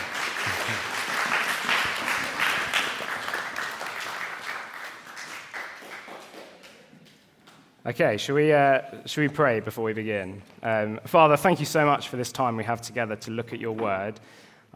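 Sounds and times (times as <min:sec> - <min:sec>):
audience applauding: 0:00.0 - 0:07.2
speech: 0:07.9 - 0:14.7.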